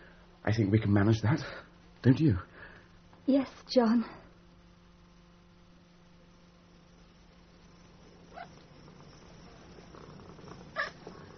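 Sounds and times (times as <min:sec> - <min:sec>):
speech: 0:00.4 - 0:02.5, 0:03.2 - 0:04.2
cat purring: 0:06.3 - 0:11.3.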